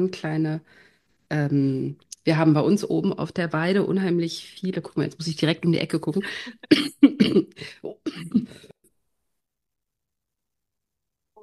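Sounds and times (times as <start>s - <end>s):
speech: 0.0s - 8.7s
person hacking coughs: 6.6s - 8.7s.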